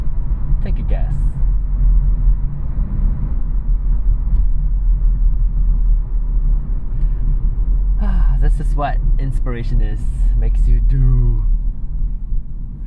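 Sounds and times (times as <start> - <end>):
car engine rumbling while driving: 0.0 - 12.8
road noise: 0.0 - 12.8
speech: 8.8 - 11.6.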